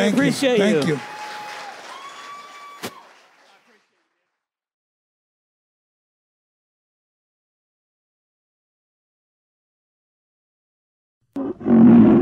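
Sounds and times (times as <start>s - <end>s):
speech: 0.0s - 1.1s
standing audience applause and cheering: 0.0s - 4.0s.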